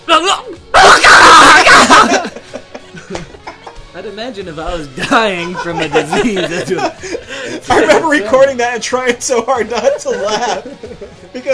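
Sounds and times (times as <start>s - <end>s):
person screaming harshly imitating a frantic zombie: 0.1s - 2.2s
laughter: 1.2s - 3.9s, 4.8s - 11.5s
speech: 4.2s - 11.5s.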